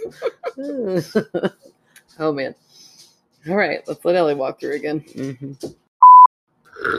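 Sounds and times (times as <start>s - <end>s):
laughter: 0.0s - 1.7s
speech: 0.1s - 2.7s, 3.4s - 5.8s, 6.8s - 6.9s
short steady electronic beep: 6.0s - 6.3s
brief rough throaty burp: 6.7s - 6.9s.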